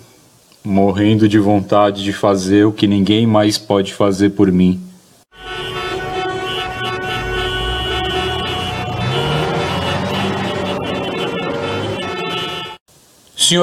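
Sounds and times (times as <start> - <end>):
speech: 0.6 - 4.9, 13.5 - 13.6
car horn toot: 5.3 - 12.8
faint siren-like tone: 5.4 - 12.8
heavy truck engines in São Paulo traffic: 5.4 - 12.8.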